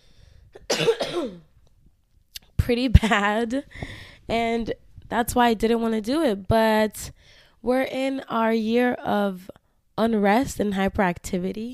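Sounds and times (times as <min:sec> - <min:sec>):
person who is unwell coughing: 0:00.6 - 0:01.5
speech: 0:00.8 - 0:01.5, 0:02.7 - 0:11.7.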